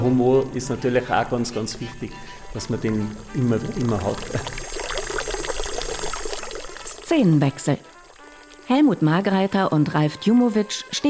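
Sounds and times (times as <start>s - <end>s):
speech: 0.0s - 4.7s, 7.1s - 7.9s, 8.7s - 11.0s
fountain water splashing: 2.6s - 9.4s.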